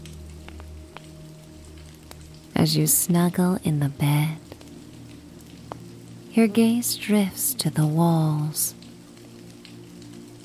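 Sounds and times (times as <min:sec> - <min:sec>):
steady rain pattering on a surface: 0:00.0 - 0:10.4
speech: 0:02.6 - 0:04.5, 0:06.4 - 0:08.8.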